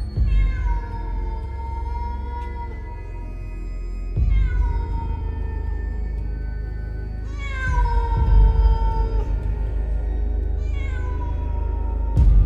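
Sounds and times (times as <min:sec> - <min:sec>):
cat yowling plaintively around a house: 0:00.2 - 0:03.4, 0:04.2 - 0:06.1, 0:07.2 - 0:12.3.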